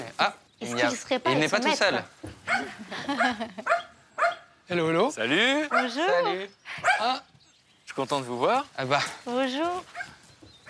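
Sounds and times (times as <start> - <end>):
speech: 0.2 - 3.8, 4.7 - 7.3, 8.0 - 10.1
dog giving a whiny yelp and sharp barks: 2.4 - 4.5, 5.7 - 6.2, 9.9 - 10.6
laughter: 2.5 - 3.9.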